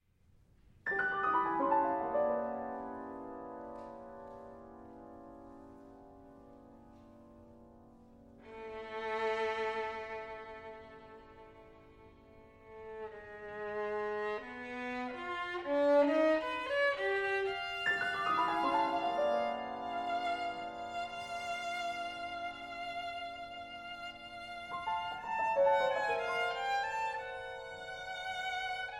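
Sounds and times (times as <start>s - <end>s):
piano playing in a live concert performance: 0.8s - 28.9s
violin playing in a live concert performance: 8.4s - 28.9s.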